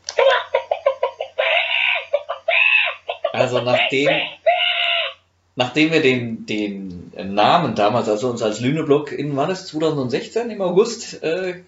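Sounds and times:
chicken clucking jingle with squawk: 0.2s - 4.8s
speech: 3.4s - 4.4s, 5.6s - 11.6s.

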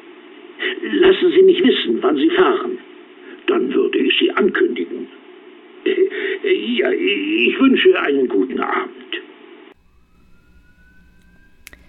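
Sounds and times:
speech: 0.8s - 2.8s, 3.6s - 5.2s, 5.8s - 9.1s
police car siren: 9.8s - 11.8s.

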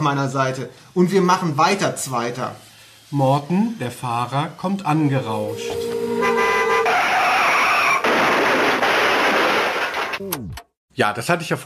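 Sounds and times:
speech: 0.0s - 6.4s, 10.2s - 11.6s
car braking with a screech: 5.1s - 8.8s
car horn toots: 5.5s - 8.0s
car crashing: 5.5s - 10.2s.

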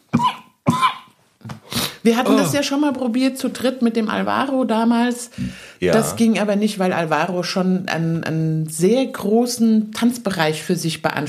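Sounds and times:
person coughing: 0.2s - 1.0s, 2.2s - 2.6s
speech: 2.0s - 11.2s.

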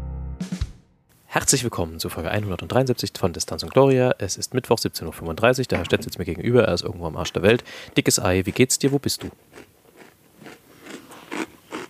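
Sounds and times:
speech: 1.3s - 9.7s
person chewing and crunching food: 7.6s - 11.8s.

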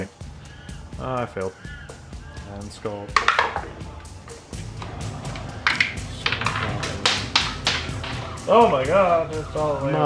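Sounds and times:
speech: 1.0s - 1.8s, 2.5s - 4.0s, 8.5s - 10.0s
dice clattering across a hard tabletop: 3.2s - 3.8s, 4.6s - 8.9s.

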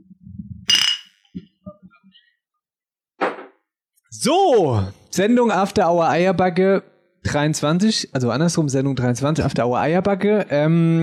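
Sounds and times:
glasses clinking in a toast: 0.7s - 1.1s
speech: 4.1s - 11.0s.

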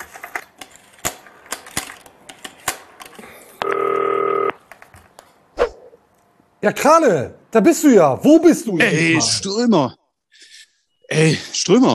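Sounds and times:
steady electronic telephone tone: 3.6s - 4.6s
speech: 6.6s - 10.0s, 11.2s - 11.9s.

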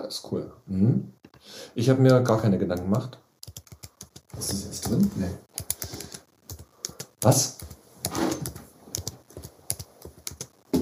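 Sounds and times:
speech: 0.1s - 3.2s, 4.4s - 5.7s, 7.2s - 8.5s
keys clattering as someone types a short note: 2.0s - 10.6s.

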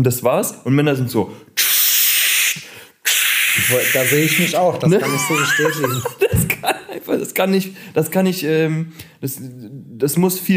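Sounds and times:
speech: 0.0s - 1.8s, 3.6s - 10.5s
voice imitating spray deodorant hiss: 1.6s - 4.6s
laughter: 4.8s - 7.1s.

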